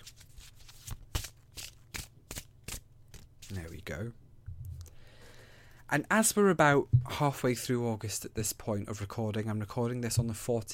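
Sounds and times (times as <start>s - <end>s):
deck of tarot cards being shuffled: 0.0s - 3.8s
speech: 3.5s - 4.2s, 5.9s - 10.7s.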